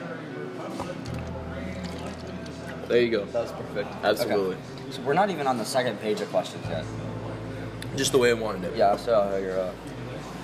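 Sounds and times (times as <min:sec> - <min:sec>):
lemonade and orange cream drink pouring into a glass: 0:01.1 - 0:02.9
speech: 0:02.9 - 0:07.1, 0:08.0 - 0:09.9.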